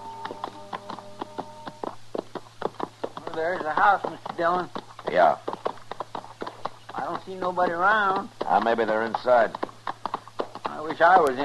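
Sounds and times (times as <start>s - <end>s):
faint sustained tone: 0.0s - 1.9s
horses' hooves clip-clopping as riders approach: 0.0s - 11.4s
speech: 3.4s - 5.5s, 7.0s - 9.6s, 10.9s - 11.4s.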